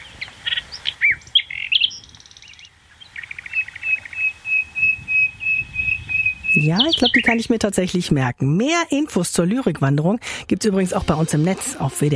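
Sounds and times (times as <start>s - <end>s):
nightingale singing: 0.0s - 7.6s
speech: 6.6s - 12.1s.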